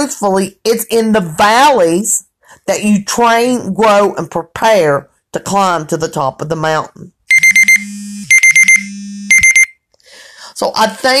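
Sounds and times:
speech: 0.0 - 7.2, 10.6 - 11.1
timer alarm with rapid high-pitched electronic beeps: 7.3 - 9.8.

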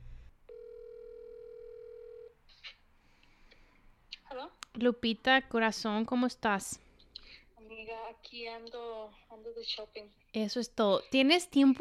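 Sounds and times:
telephone ringing tone while calling someone: 0.5 - 2.4
speech: 4.3 - 6.8, 8.2 - 11.7.

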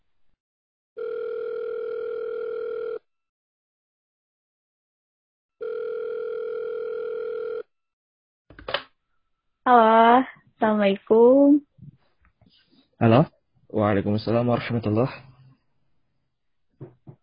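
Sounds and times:
telephone dial tone while placing a call: 1.0 - 3.0, 5.6 - 7.6
speech: 9.7 - 11.7, 13.0 - 15.3.

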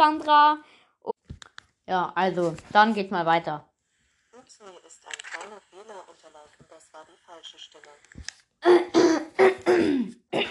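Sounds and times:
speech: 0.0 - 1.2, 1.9 - 3.7, 4.5 - 10.4
harsh raspy coughs: 8.6 - 10.4
throat-clearing bursts: 8.6 - 10.4.

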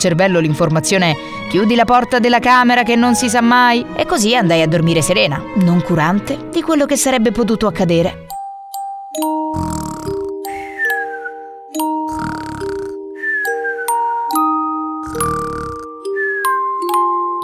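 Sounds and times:
speech: 0.0 - 8.2
gentle tinkling melody of sustained bell-like tones: 8.3 - 17.4
person snoring: 9.4 - 14.1, 15.0 - 16.2.

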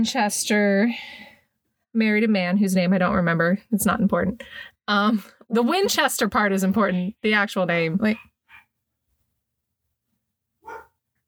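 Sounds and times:
speech: 0.0 - 1.3, 2.0 - 8.3
single sharp dog bark: 10.6 - 11.0.

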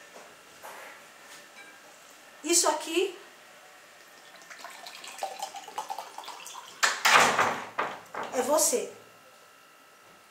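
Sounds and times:
speech: 2.4 - 3.2, 8.4 - 9.0
water being poured: 4.0 - 6.9.

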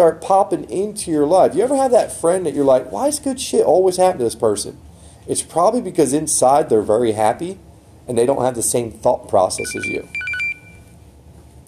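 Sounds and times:
speech: 0.0 - 10.2
quiet low hum: 0.0 - 11.6
phone ringing with short burst of electronic tones: 9.6 - 11.0.

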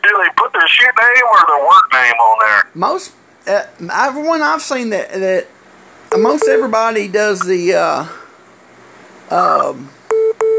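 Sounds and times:
speech: 0.1 - 8.2, 9.3 - 10.0
call-waiting beeps on a telephone line: 6.1 - 6.9.

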